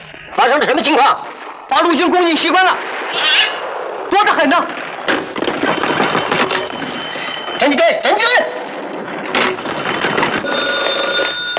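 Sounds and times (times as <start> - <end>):
speech: 0.4 - 4.8, 7.6 - 8.6
telephone ringing: 5.5 - 7.8, 9.1 - 11.5.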